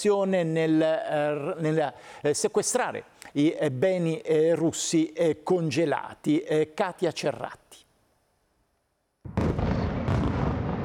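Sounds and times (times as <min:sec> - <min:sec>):
speech: 0:00.0 - 0:07.8
heavy explosion from a ballistic missile strike on the centre of Kyiv, Ukraine: 0:09.3 - 0:10.8.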